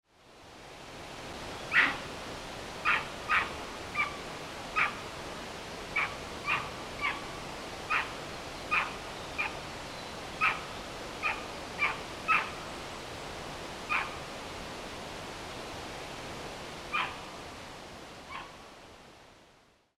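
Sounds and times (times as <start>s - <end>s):
Japanese macaque calling: 1.7s - 2.1s, 2.8s - 4.2s, 4.8s - 5.0s, 6.0s - 7.3s, 7.9s - 8.1s, 8.7s - 9.6s, 10.4s - 10.6s, 11.2s - 12.6s, 13.9s - 14.2s, 16.9s - 17.2s.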